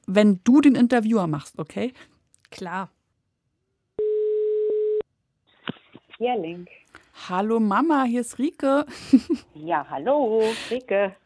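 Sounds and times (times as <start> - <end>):
speech: 0.1 - 3.0, 5.7 - 11.2
telephone dial tone while placing a call: 4.0 - 5.0
laughter: 8.9 - 9.5.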